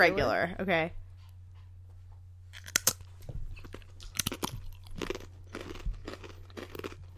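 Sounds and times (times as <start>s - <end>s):
thin crunchy wheat cracker being bitten and chewed: 2.5s - 7.1s.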